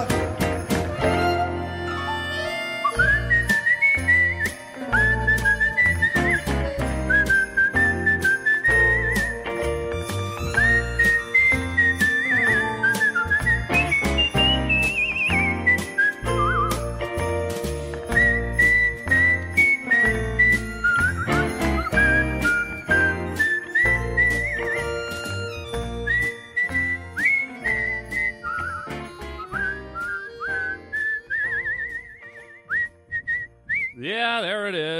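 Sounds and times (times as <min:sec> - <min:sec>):
jingling bells: 0:00.0 - 0:30.4
whistled festive Christmas tune: 0:00.0 - 0:34.1
steady instrumental backing: 0:00.0 - 0:34.9.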